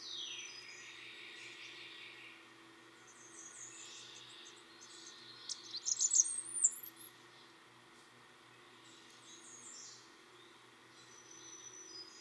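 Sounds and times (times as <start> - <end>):
Blackburnian warbler singing, Setophaga fusca: 0.0 - 12.2.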